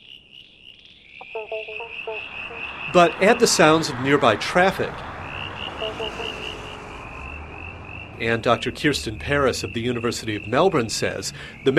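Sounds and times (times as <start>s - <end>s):
male southern brown tree frog calling with pulsed croaks: 0.0s - 4.0s, 5.2s - 8.2s
speech: 1.4s - 5.1s, 8.2s - 11.7s.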